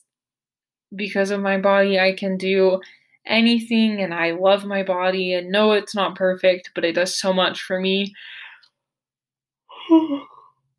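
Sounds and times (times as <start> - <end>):
speech: 0.9 - 8.4, 9.9 - 10.3
soft breath: 8.2 - 8.7.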